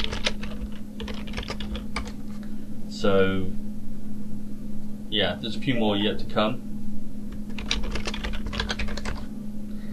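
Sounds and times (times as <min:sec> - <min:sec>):
typing on a computer keyboard: 0:00.0 - 0:02.2, 0:07.3 - 0:09.3
low electrical hum: 0:00.0 - 0:09.9
speech: 0:03.0 - 0:03.6, 0:05.1 - 0:06.7.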